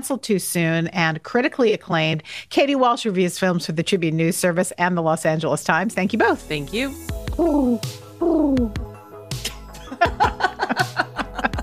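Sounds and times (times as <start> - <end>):
speech: 0.0 - 8.9
person imitating pigeon cooing: 7.3 - 8.8
laughter: 9.7 - 11.6.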